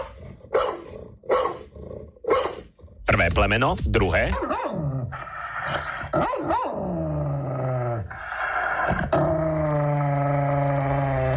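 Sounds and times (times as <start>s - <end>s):
large angry dog barking: 0.0s - 2.7s, 6.2s - 6.8s
angry dog snarling and growling: 0.0s - 3.1s, 4.4s - 11.3s
speech: 3.3s - 8.2s.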